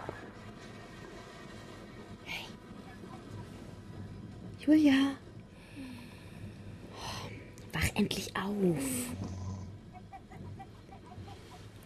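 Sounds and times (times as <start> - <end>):
constant low rumble of a moving train carriage: 0.0 - 11.8
speech: 4.7 - 5.2, 8.0 - 9.4
caged chickens clucking aboard a moving train: 9.7 - 11.8.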